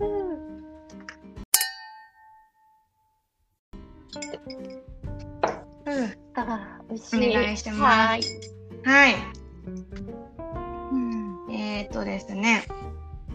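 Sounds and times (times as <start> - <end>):
drinking glasses of matcha and herb water clinking in a toast: 1.5 - 2.8, 4.2 - 4.7, 7.2 - 8.6
speech: 4.1 - 5.1, 5.9 - 10.5, 11.5 - 13.0
people chatting: 5.9 - 9.3, 10.9 - 12.7.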